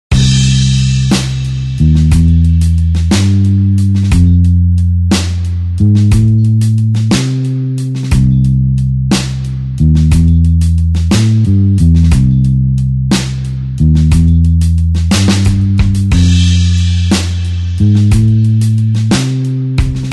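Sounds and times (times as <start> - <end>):
slow blues music: 0.2 - 20.1.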